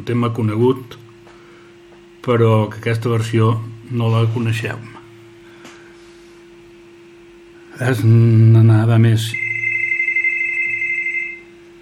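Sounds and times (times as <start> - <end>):
speech: 0.0 - 1.0, 2.2 - 5.0, 7.8 - 9.4
faint hum: 0.0 - 11.8
telephone ringing with a steady electronic tone: 9.3 - 11.5.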